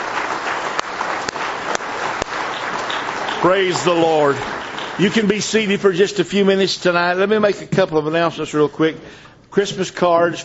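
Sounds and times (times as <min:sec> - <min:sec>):
sharp individual claps: 0:00.0 - 0:05.4
audience applause: 0:00.0 - 0:06.1
speech: 0:03.4 - 0:10.4.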